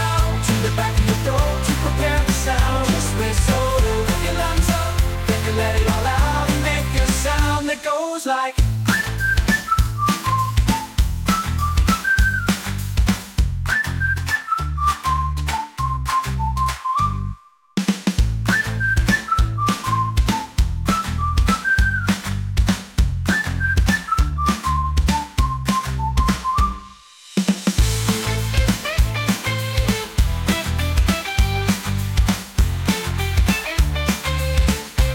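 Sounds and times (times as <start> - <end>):
loud rhythmic backing track with deep bass: 0.0 - 7.7, 8.6 - 16.8, 18.0 - 26.9, 27.8 - 35.1
person whistling a melody with the mouth: 8.8 - 12.8, 13.6 - 17.5, 18.5 - 22.2, 23.2 - 27.1.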